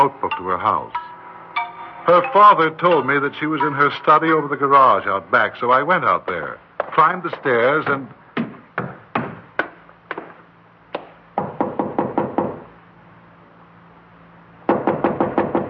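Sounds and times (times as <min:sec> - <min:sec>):
speech: 0:00.0 - 0:01.0, 0:02.1 - 0:08.2
knocking on a door: 0:11.4 - 0:12.6, 0:14.7 - 0:15.6.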